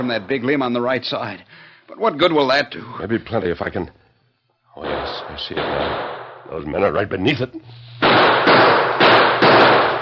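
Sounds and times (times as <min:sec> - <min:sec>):
speech: 0:00.0 - 0:04.0, 0:04.8 - 0:08.2
gunshots in a radio drama shootout: 0:04.8 - 0:06.5, 0:08.0 - 0:10.0.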